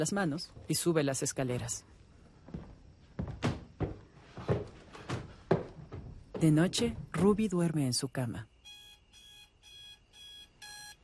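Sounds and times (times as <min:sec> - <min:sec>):
speech: 0:00.0 - 0:02.6, 0:06.4 - 0:08.5
alarm clock ringing in electronic buzzy bursts: 0:08.6 - 0:11.0.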